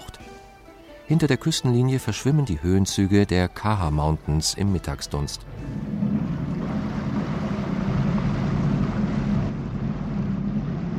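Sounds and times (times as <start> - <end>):
speech: 1.1 - 5.9
boat underway on open water across a bay: 5.4 - 10.9
low boat engine drone: 5.4 - 10.9.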